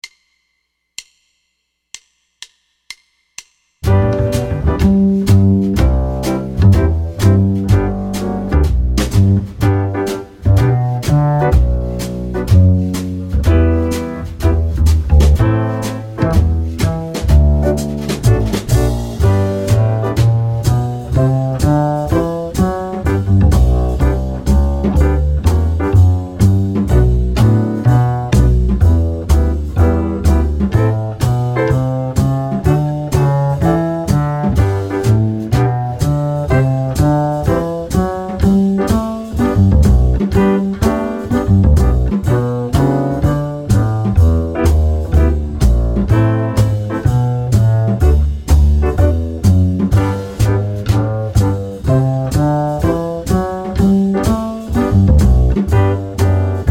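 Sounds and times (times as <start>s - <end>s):
swing piano: 3.8s - 56.6s.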